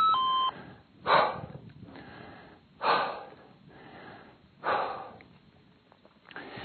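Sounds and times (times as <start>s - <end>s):
heavy labored breathing while hiking uphill at altitude: 0.5s - 5.4s, 6.3s - 6.6s.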